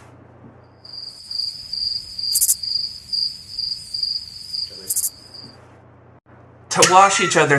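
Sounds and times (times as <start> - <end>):
crickets chirping: 0.7 - 5.6
speech: 6.9 - 7.5.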